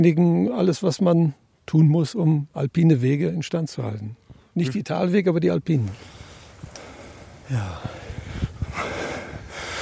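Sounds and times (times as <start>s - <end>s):
speech: 0.0s - 6.2s, 7.5s - 8.9s
outdoor wind: 0.0s - 9.8s
microphone noise: 5.9s - 9.8s
sharp snorting exhalations: 5.9s - 9.8s
heavy panting after steep uphill hiking: 6.8s - 9.8s.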